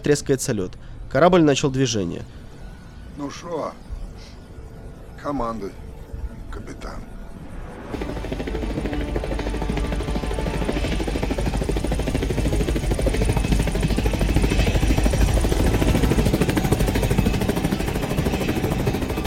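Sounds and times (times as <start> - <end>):
speech: 0.0 - 2.4, 3.2 - 3.9, 5.2 - 5.9, 6.6 - 7.1
helicopter lifting off beside an icebreaker ship, rotor thrum and engine drone: 0.0 - 19.2.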